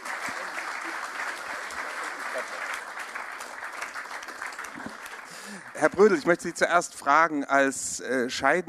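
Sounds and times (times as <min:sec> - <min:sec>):
crowd applauding: 0:00.0 - 0:06.6
speech: 0:05.8 - 0:08.6.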